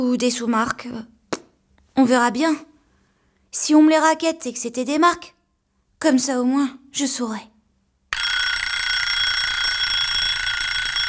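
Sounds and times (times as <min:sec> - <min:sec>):
speech: 0:00.0 - 0:01.2, 0:02.0 - 0:02.7, 0:03.5 - 0:05.4, 0:06.0 - 0:07.5
alarm clock ringing with loud steady electronic tone: 0:08.1 - 0:11.0.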